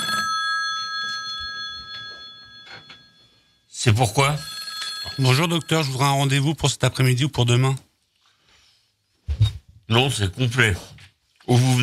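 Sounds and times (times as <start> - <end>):
telephone ringing with high electronic trill in a doctor's consulting room: 0.0 - 6.6
speech: 3.8 - 7.9, 9.9 - 11.8.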